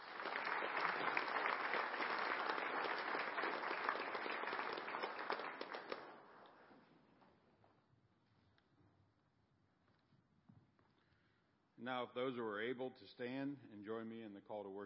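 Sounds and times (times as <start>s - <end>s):
roomful of people applauding: 0.0s - 6.4s
speech: 11.9s - 14.8s.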